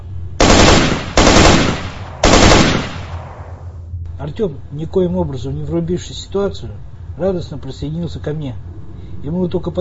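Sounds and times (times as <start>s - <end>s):
automatic rifle firing bursts in a firefight: 0.4s - 3.4s
speech: 4.2s - 8.6s, 9.2s - 9.8s.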